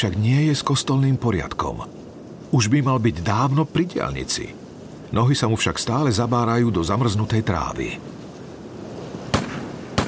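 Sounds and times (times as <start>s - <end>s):
speech: 0.0s - 8.2s
steady low hiss: 0.0s - 10.0s
distant sharp rifle gunshots: 9.3s - 10.0s.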